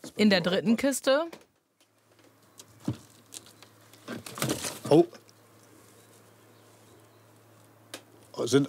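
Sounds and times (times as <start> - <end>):
speech: 0.2 - 1.5, 4.9 - 5.2, 8.4 - 8.6
young jackdaws shuffling and rasping inside a nest box: 1.8 - 8.4.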